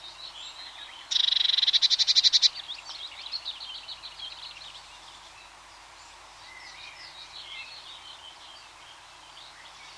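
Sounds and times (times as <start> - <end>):
softer varied songbird warbling: 0.8 - 3.0
blue tit giving a buzzy pulsed churring awareness call: 1.1 - 2.6.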